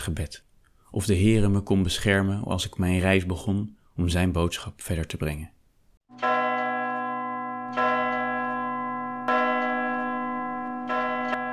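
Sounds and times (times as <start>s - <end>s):
speech: 0.0s - 5.6s
church bells ringing: 6.1s - 11.5s.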